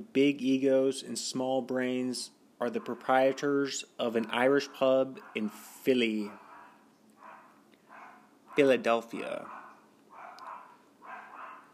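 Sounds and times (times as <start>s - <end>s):
speech: 0.0s - 6.4s, 8.6s - 9.6s
small dog yapping: 6.4s - 8.7s, 9.5s - 11.7s.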